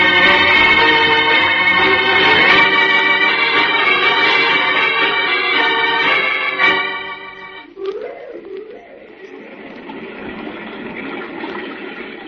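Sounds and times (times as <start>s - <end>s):
loud sustained musical chord: 0.0s - 7.7s.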